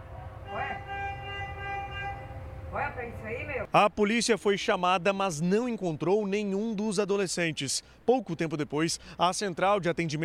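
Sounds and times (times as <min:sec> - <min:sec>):
low rumbling background: 0:00.0 - 0:03.7
car horn blast from a car stopped in traffic in central São Paulo: 0:00.4 - 0:02.6
speech: 0:03.0 - 0:10.2.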